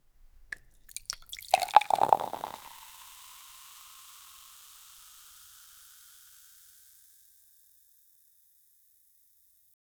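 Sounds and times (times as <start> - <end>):
beer pouring into a glass: 0.5 - 6.5.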